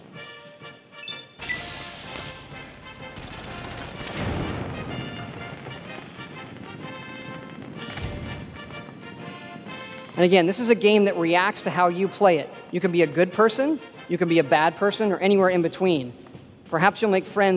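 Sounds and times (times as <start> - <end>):
pulse grenade EMP blast in a video game: 1.5 - 9.7
speech: 10.2 - 17.5.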